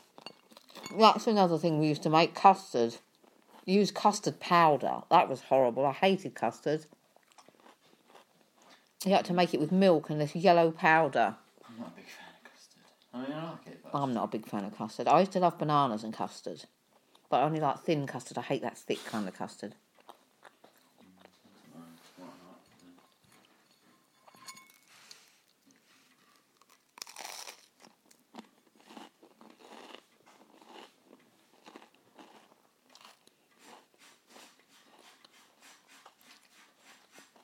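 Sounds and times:
speech: 0:00.9 - 0:03.1, 0:03.7 - 0:07.0, 0:09.0 - 0:12.2, 0:13.9 - 0:19.8
person chewing crunchy food: 0:07.0 - 0:09.0, 0:19.9 - 0:21.4, 0:24.6 - 0:37.4.

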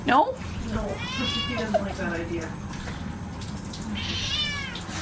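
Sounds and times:
speech: 0:00.0 - 0:03.0, 0:03.9 - 0:04.4
male cat meowing: 0:00.8 - 0:01.8, 0:03.9 - 0:04.9.

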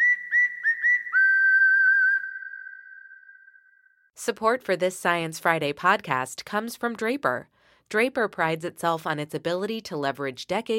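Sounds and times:
loud whistle chirps: 0:00.0 - 0:04.1
speech: 0:04.2 - 0:10.7.

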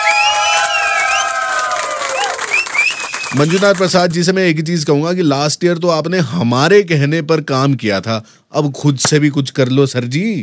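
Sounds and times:
crowd whooping and shouting in Bangalore: 0:00.0 - 0:03.3
crowd clapping in Bangalore: 0:00.0 - 0:04.1
speech: 0:03.3 - 0:10.4.

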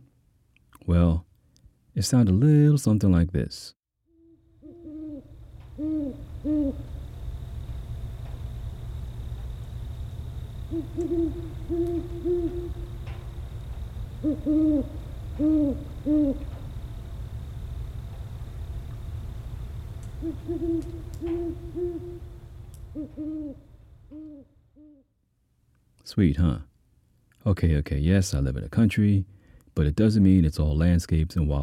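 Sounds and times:
speech: 0:00.9 - 0:01.3, 0:02.0 - 0:03.8, 0:10.7 - 0:12.8, 0:14.2 - 0:16.6, 0:20.2 - 0:22.3, 0:23.0 - 0:24.5, 0:26.1 - 0:26.7, 0:27.4 - 0:31.6
owl hooting outside a bedroom window in the country: 0:04.1 - 0:07.0, 0:10.6 - 0:13.2, 0:14.1 - 0:16.6, 0:20.2 - 0:25.1.

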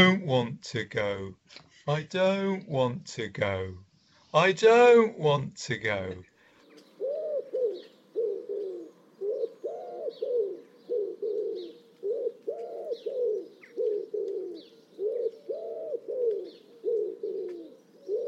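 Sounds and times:
speech: 0:00.0 - 0:06.3
faint higher bird chirps: 0:06.2 - 0:18.2
wood pigeon cooing its song: 0:06.6 - 0:18.2.

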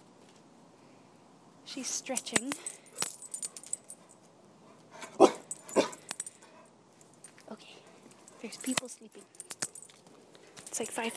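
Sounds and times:
speech: 0:01.7 - 0:02.8, 0:08.5 - 0:09.5, 0:10.8 - 0:11.1
light metallic jingling: 0:02.0 - 0:11.1
dog barking softly: 0:05.0 - 0:06.0.

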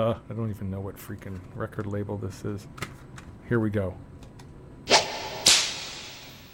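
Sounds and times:
speech: 0:00.0 - 0:04.2
whip cracks: 0:04.9 - 0:06.5.

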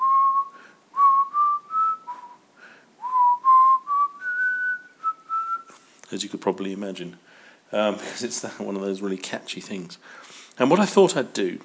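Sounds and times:
person whistling a tune: 0:00.0 - 0:02.4, 0:03.0 - 0:05.8
person breathing: 0:00.5 - 0:00.9, 0:02.6 - 0:02.9, 0:07.2 - 0:08.2, 0:10.0 - 0:10.6
speech: 0:06.1 - 0:11.6.

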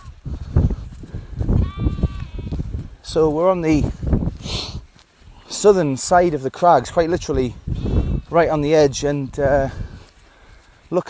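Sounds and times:
Swaledale sheep and lambs bleating on moorland: 0:01.5 - 0:02.7
speech: 0:03.1 - 0:04.7, 0:05.6 - 0:07.7, 0:08.3 - 0:09.8.

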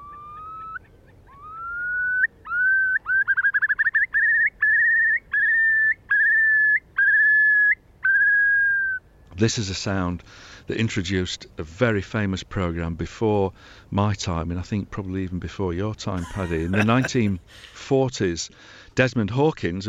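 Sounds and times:
Eurasian curlew spring display song: 0:00.0 - 0:09.1
speech: 0:09.4 - 0:19.8
laughter: 0:16.2 - 0:17.8.

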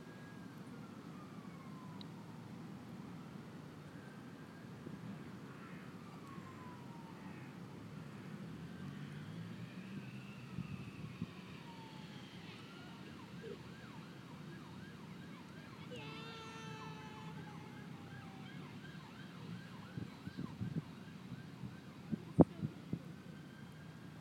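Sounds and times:
emergency vehicle siren wailing and yelping: 0:00.0 - 0:24.1.

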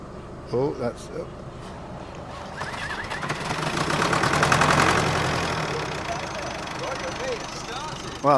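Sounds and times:
speech: 0:00.5 - 0:01.5, 0:07.2 - 0:08.3
tractor diesel engine cranking and idling: 0:02.2 - 0:08.3.

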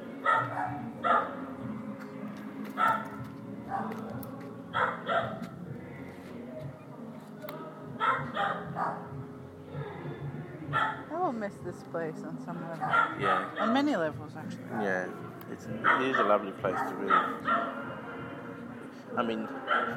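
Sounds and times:
two neighbouring dogs barking at each other: 0:00.1 - 0:01.4, 0:02.8 - 0:04.1, 0:04.7 - 0:05.6, 0:08.0 - 0:09.1, 0:10.7 - 0:11.0, 0:12.8 - 0:13.9, 0:15.8 - 0:17.9, 0:19.5 - 0:19.9
speech: 0:11.5 - 0:17.8, 0:19.2 - 0:19.9.

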